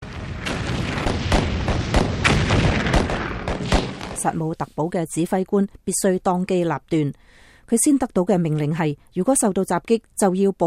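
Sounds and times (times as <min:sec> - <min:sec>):
continuous rumbling roar: 0:00.0 - 0:04.2
cannon fire from shore defenders in South Carolina firing on a transport ship: 0:00.0 - 0:04.4
speech: 0:04.2 - 0:10.6.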